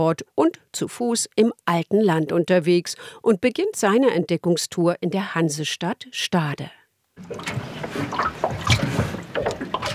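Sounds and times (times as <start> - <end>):
speech: 0.0 - 9.1
river water lapping against the hull of a small boat: 7.2 - 9.9.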